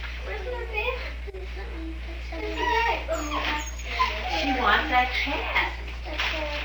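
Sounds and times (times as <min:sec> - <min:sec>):
low hum: 0:00.0 - 0:06.6
dog whimpering and yipping: 0:02.4 - 0:05.8
speech: 0:04.9 - 0:05.8.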